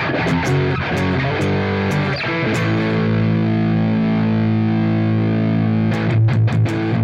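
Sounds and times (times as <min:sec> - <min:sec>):
Telecaster electric guitar played through a distortion pedal: 0:00.0 - 0:07.0.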